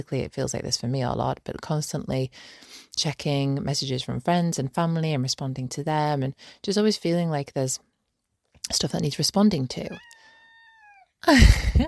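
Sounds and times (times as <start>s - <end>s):
speech: 0.0s - 7.9s, 8.7s - 10.1s, 11.2s - 11.8s
cat meowing: 9.9s - 11.2s.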